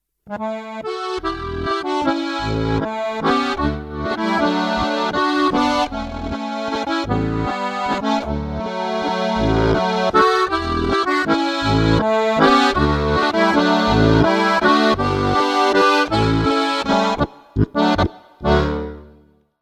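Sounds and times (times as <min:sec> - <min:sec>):
accordion playing a flat waltz: 0:00.3 - 0:19.3.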